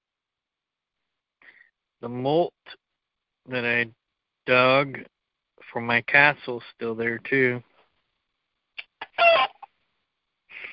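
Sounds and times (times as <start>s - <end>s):
speech: 2.0s - 2.8s, 3.4s - 7.7s
video game chicken harmonic squawk: 9.0s - 9.6s.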